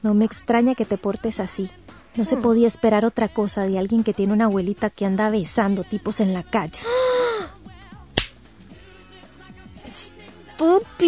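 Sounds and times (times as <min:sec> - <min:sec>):
speech: 0:00.0 - 0:07.1, 0:10.6 - 0:11.0
loud sharp slap across the face: 0:08.2 - 0:08.5.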